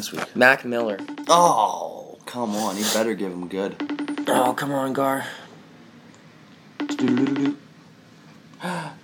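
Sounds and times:
speech: 0.0 - 5.4, 7.0 - 7.6
video call chiming ringtone: 1.0 - 1.4, 3.8 - 4.6, 6.8 - 7.6.

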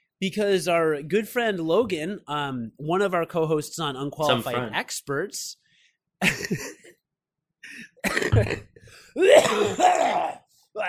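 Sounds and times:
speech: 0.2 - 5.6, 6.2 - 6.8, 7.8 - 10.8
hacking coughs from mucus in the throat: 7.9 - 10.4
phlegmy throat clearing from mucus in the throat: 8.0 - 10.4.

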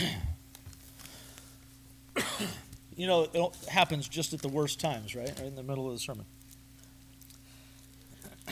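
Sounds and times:
person clearing throat: 0.0 - 0.4, 2.2 - 2.7
person coughing: 0.0 - 0.4, 2.2 - 2.7
speech: 2.4 - 6.4.

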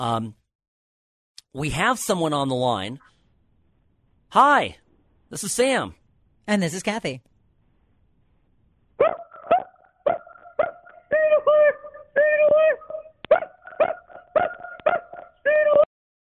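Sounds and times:
speech: 0.0 - 0.4, 1.5 - 3.1, 4.3 - 7.3
person imitating a dog, barking out a song melody: 9.0 - 15.9.

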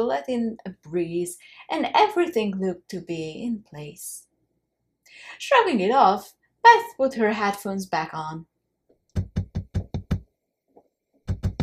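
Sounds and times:
speech: 0.0 - 4.3, 5.1 - 8.5
sharp tapping knocks in a bedroom with an open window: 9.2 - 10.2.

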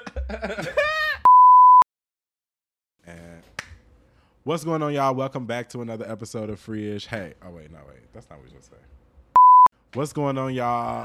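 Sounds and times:
speech: 0.3 - 1.1, 4.4 - 9.1, 9.9 - 11.0
loud steady electronic beep: 9.4 - 9.7.

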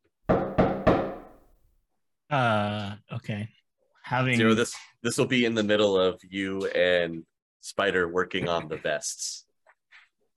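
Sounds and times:
firm knocks on a wooden door: 0.3 - 1.4
speech: 2.3 - 9.5.

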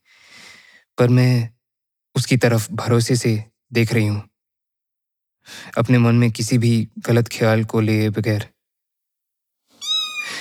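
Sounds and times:
speech: 1.0 - 1.6, 2.2 - 4.3, 5.5 - 8.5
cat meowing: 9.8 - 10.4.

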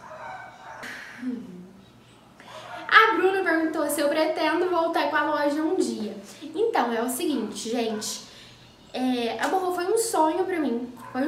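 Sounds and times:
neighbor's dogs barking: 0.0 - 1.2, 1.9 - 3.2, 7.3 - 8.6, 10.9 - 11.2
speech: 3.2 - 8.3, 8.9 - 11.2.

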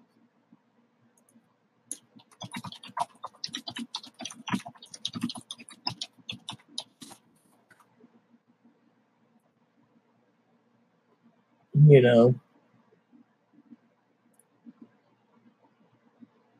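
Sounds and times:
typing on a computer keyboard: 1.9 - 7.2
speech: 11.9 - 12.4.

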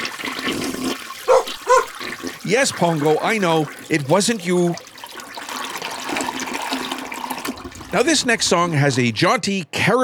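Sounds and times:
toilet flushing with rushing swirl of water: 0.0 - 9.4
speech: 2.5 - 4.9, 7.9 - 10.0.

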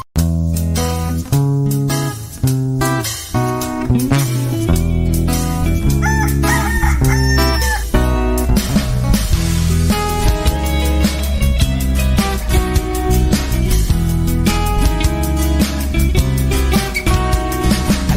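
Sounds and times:
loud steady music: 0.0 - 18.1
rooster crowing with rising drawn-out calls: 5.8 - 8.0.

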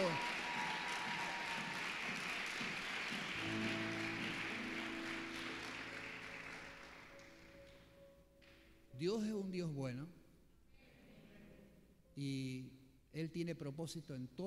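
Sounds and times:
crowd applauding: 0.0 - 7.7
speech: 9.0 - 10.2, 12.2 - 14.4.

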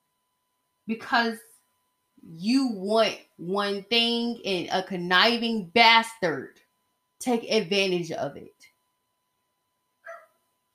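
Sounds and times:
speech: 0.9 - 1.5, 2.2 - 6.6, 7.2 - 8.7
dog barking: 10.0 - 10.3.

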